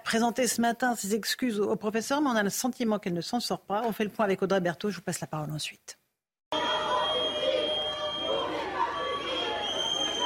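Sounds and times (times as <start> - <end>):
speech: 0.1 - 6.0
indistinct voices of protesters: 6.6 - 10.2
protesters blowing shrill whistles: 6.6 - 10.2
protesting crowd of union members and teachers booing: 6.6 - 10.2.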